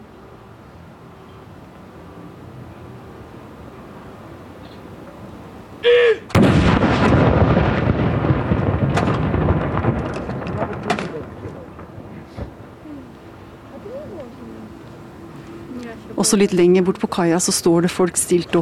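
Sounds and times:
cannon salute firing from fortress: 5.9 - 12.7
speech: 16.3 - 18.6.

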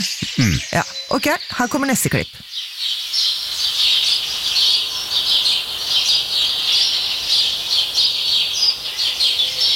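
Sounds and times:
speech: 0.0 - 3.3
high-pitched birdsong in a forest: 0.0 - 9.7.

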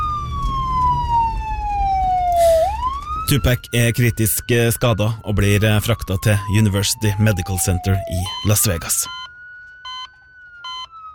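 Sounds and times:
low rumble of traffic: 0.0 - 9.1
emergency vehicle siren wailing: 0.0 - 11.1
speech: 3.3 - 9.2.

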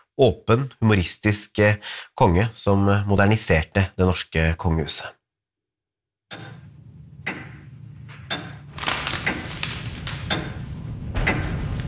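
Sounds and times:
speech: 0.2 - 5.2, 6.3 - 6.6
old grandfather clock ticking: 6.3 - 11.8
low hum: 6.4 - 11.8.

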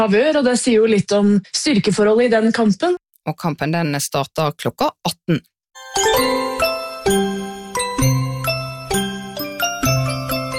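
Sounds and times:
speech: 0.0 - 6.7
ice cream truck jingle with chiming bell-like notes: 5.8 - 10.5.

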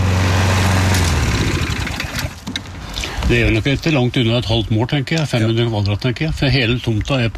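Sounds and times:
small petrol push lawnmower engine running: 0.0 - 3.8
speech: 3.3 - 7.3.

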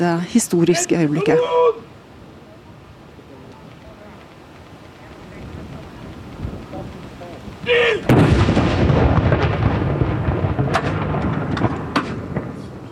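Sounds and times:
speech: 0.0 - 1.9
cannon salute shot from fortress artillery outdoors: 8.0 - 12.9.

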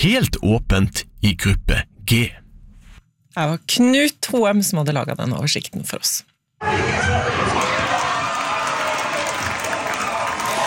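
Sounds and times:
speech: 0.0 - 2.4, 3.4 - 7.7
dense crowd cheering and shouting at a football match viewing: 6.6 - 10.6
clapping: 7.8 - 10.6.

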